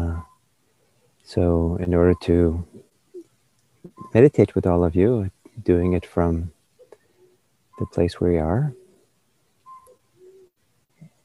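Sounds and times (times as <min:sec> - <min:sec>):
soft steady hiss: 0:00.0 - 0:11.2
speech: 0:01.3 - 0:02.8, 0:03.9 - 0:06.6, 0:07.8 - 0:08.8
night bird alarm-like whistled call: 0:09.6 - 0:10.5.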